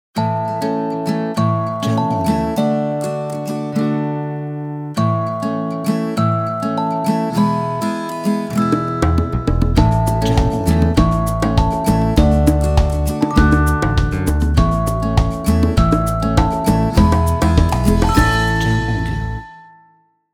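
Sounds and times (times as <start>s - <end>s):
guitar: 0.2s - 20.1s
bells: 6.5s - 19.8s.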